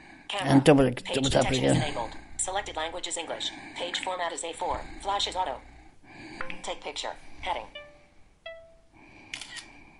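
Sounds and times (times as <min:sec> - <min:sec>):
speech: 0:00.3 - 0:05.7, 0:06.4 - 0:07.8
faint three-tone electronic processing chime from a phone app: 0:07.7 - 0:08.9.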